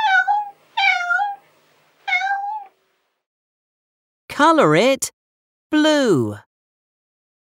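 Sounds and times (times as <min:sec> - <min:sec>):
cat meowing: 0:00.0 - 0:01.4, 0:02.0 - 0:02.7
speech: 0:04.4 - 0:06.5.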